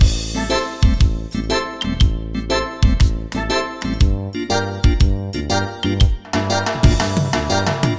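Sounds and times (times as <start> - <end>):
reggae comping: 0.0 - 7.9.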